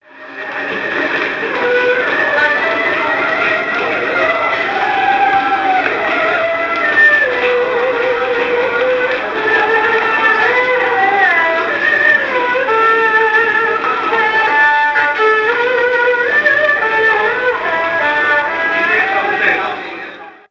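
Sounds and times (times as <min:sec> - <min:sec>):
subway musician playing in China: 0:00.0 - 0:20.5.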